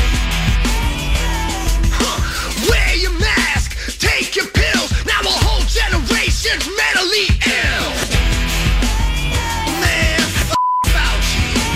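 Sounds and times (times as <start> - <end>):
loud busy song: 0.0 - 11.7
censor beep over profanity in a song: 10.6 - 10.9.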